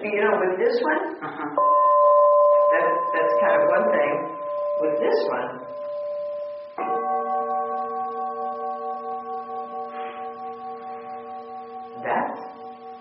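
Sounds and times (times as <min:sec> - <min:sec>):
speech: 0:00.2 - 0:01.8, 0:03.1 - 0:05.8
bell struck before a recitation ringing: 0:01.6 - 0:12.9.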